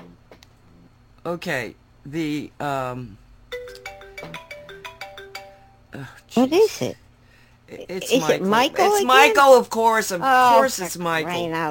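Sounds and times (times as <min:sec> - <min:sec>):
speech: 0:01.2 - 0:03.2, 0:04.2 - 0:04.5, 0:05.9 - 0:07.0, 0:07.7 - 0:11.6
melodic phone ringtone with bright chiming notes: 0:03.5 - 0:05.9.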